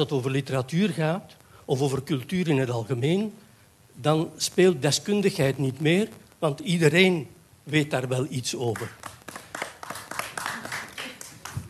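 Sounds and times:
speech: 0:00.0 - 0:03.4, 0:04.0 - 0:09.1
small group of people clapping: 0:08.6 - 0:11.6.

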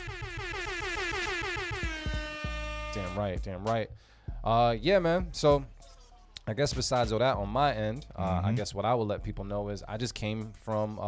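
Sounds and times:
air horn sound effect blasts: 0:00.0 - 0:03.5
pulsing low beat: 0:00.0 - 0:10.9
speech: 0:03.2 - 0:05.8, 0:06.4 - 0:11.0.

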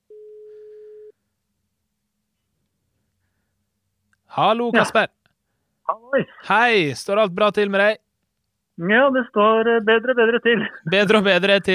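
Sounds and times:
telephone ringback tone beep as a call is placed: 0:00.1 - 0:01.1
speech: 0:04.3 - 0:05.2, 0:05.9 - 0:08.0, 0:08.8 - 0:11.7
laughter: 0:10.3 - 0:11.7.

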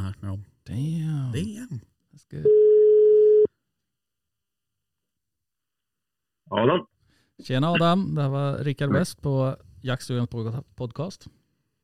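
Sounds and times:
speech: 0:00.8 - 0:01.6, 0:07.4 - 0:11.4
telephone ringing tone of a test call: 0:02.5 - 0:03.5.

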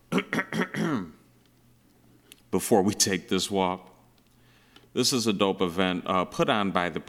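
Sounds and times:
person clearing throat: 0:00.1 - 0:01.2
speech: 0:02.5 - 0:03.9, 0:05.0 - 0:07.0.

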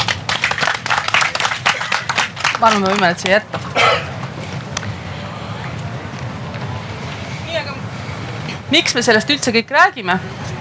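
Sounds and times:
small group clapping: 0:00.0 - 0:03.7
speech: 0:02.6 - 0:04.1, 0:08.7 - 0:10.5.

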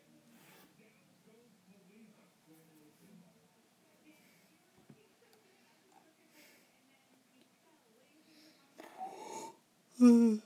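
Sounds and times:
person yawning: 0:09.1 - 0:10.4.

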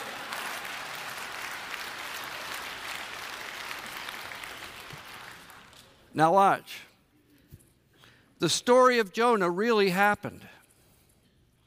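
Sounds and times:
audience clapping: 0:00.0 - 0:06.0
speech: 0:06.1 - 0:06.9, 0:08.4 - 0:10.5.

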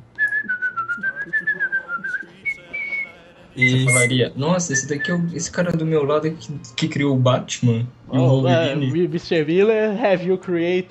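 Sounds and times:
person whistling a short melody: 0:00.2 - 0:05.3
speech: 0:03.6 - 0:10.8.

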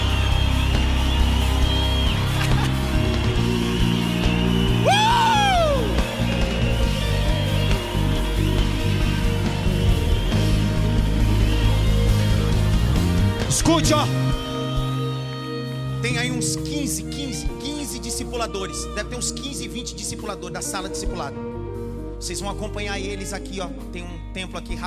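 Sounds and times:
scattered clapping: 0:00.0 - 0:04.8
piercing whistle or yell: 0:00.0 - 0:11.8
large crowd roaring: 0:00.0 - 0:13.2
crowd whistling: 0:00.0 - 0:15.5
people shouting: 0:04.4 - 0:06.2
speech: 0:13.9 - 0:14.2, 0:16.5 - 0:21.5, 0:22.2 - 0:24.8.

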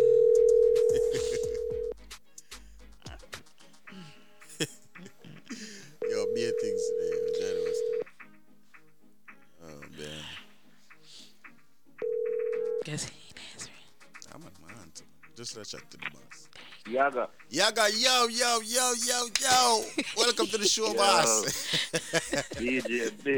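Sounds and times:
telephone dialing: 0:00.0 - 0:00.9, 0:06.0 - 0:08.0, 0:12.0 - 0:12.8
telephone dial tone: 0:00.0 - 0:01.9, 0:06.0 - 0:08.0, 0:12.0 - 0:12.8
laughter: 0:00.8 - 0:01.8, 0:03.9 - 0:06.1, 0:17.8 - 0:23.3
speech: 0:15.6 - 0:16.3, 0:16.9 - 0:23.3.

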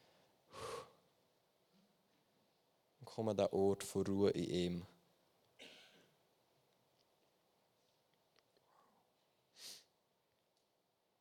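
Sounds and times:
deep breath taken to come to rest: 0:00.5 - 0:01.0
speech: 0:03.1 - 0:04.9.

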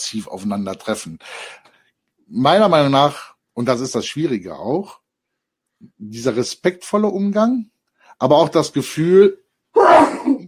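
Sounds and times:
speech: 0:00.1 - 0:01.7, 0:02.3 - 0:05.0, 0:05.8 - 0:10.1
sneeze: 0:09.8 - 0:10.4.

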